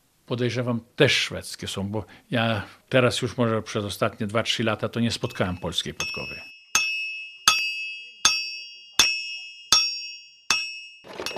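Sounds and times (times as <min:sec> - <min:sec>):
speech: 0:00.3 - 0:06.5
ringing strikes of farrier's metal tools: 0:06.0 - 0:11.3
farrier's hammers and pincers clinking in a toolbox: 0:11.0 - 0:11.3
rustling clatter: 0:11.0 - 0:11.3.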